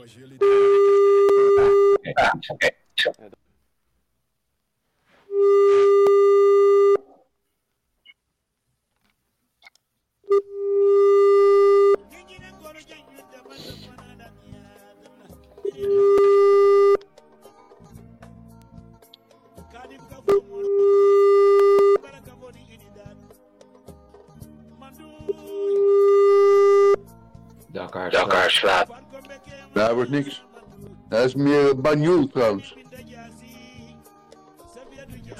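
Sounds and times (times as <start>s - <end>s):
speech: 0.0s - 3.4s, 30.0s - 30.4s, 31.2s - 32.8s
telephone line tone beeps while placing a call: 0.4s - 2.0s, 5.3s - 7.0s, 10.3s - 12.0s, 15.8s - 17.0s, 20.3s - 22.0s, 25.3s - 27.0s.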